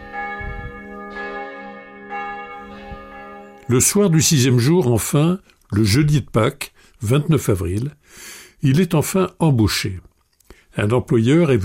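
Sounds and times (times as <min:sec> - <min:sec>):
church bells ringing in full peal: 0:00.0 - 0:05.2
speech: 0:03.7 - 0:10.1, 0:10.8 - 0:11.6.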